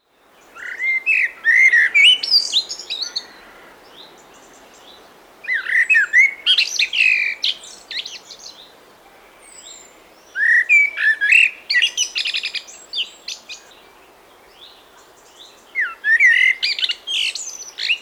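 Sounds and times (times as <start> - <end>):
blackbird singing: 0.4 - 8.7, 9.4 - 18.0.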